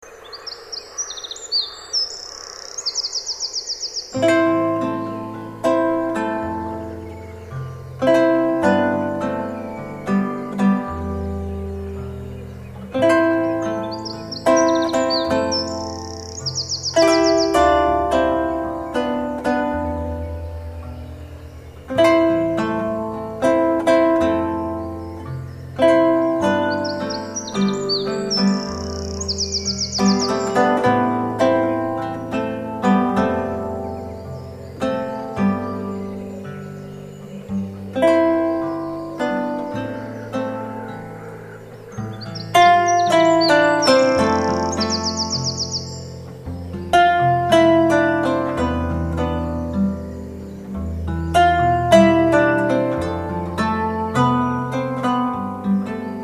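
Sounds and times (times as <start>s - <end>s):
wren: 0.0s - 56.2s.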